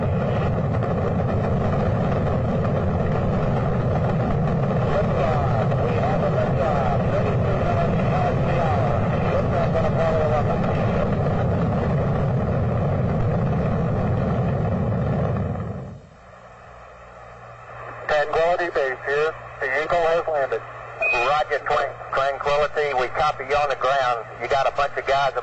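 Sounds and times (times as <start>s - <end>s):
Saturn V rocket engine roar at the Apollo 11 launch from Cape Canaveral, Florida: 0.0s - 25.4s
voices that sound like radio transmissions: 4.7s - 11.3s, 17.7s - 25.4s.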